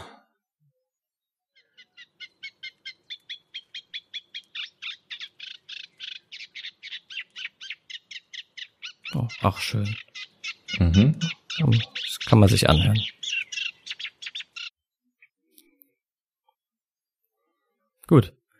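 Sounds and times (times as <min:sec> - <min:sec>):
Eurasian reed warbler singing: 0:01.6 - 0:15.3
speech: 0:09.2 - 0:10.0, 0:10.8 - 0:13.2, 0:18.1 - 0:18.4.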